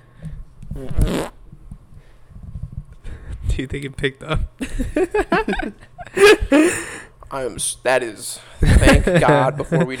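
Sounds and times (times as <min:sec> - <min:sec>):
fart into a microphone: 0:00.8 - 0:01.4
speech: 0:00.8 - 0:01.4, 0:03.6 - 0:09.9
laughter: 0:04.6 - 0:06.8, 0:08.6 - 0:09.9.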